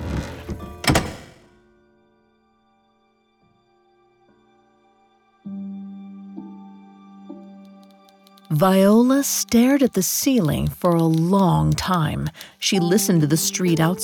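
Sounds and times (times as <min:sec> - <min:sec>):
heavy door shutting: 0:00.0 - 0:01.5
speech: 0:08.5 - 0:14.0.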